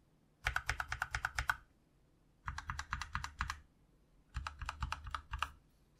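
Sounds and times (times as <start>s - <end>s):
mechanical keyboard with linear switches typing: 0.4s - 1.6s, 2.4s - 3.6s, 4.3s - 5.6s.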